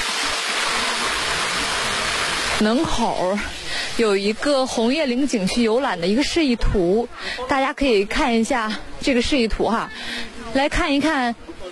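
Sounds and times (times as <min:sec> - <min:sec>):
water flowing from a small rockery waterfall and fountain at a scenic area entrance gate: 0:00.0 - 0:05.6
speech: 0:02.6 - 0:11.5.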